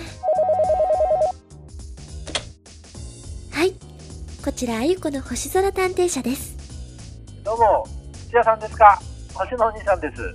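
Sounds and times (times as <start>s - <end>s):
telephone ringing in an electronic trill: 0.2s - 1.3s
speech: 4.5s - 6.6s, 7.6s - 10.3s.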